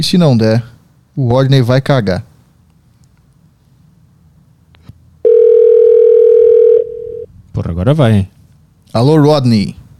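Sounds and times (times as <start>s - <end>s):
speech: 0.0s - 2.3s, 7.6s - 8.3s, 8.9s - 9.8s
phone call tone over a Bluetooth connection: 5.2s - 7.3s.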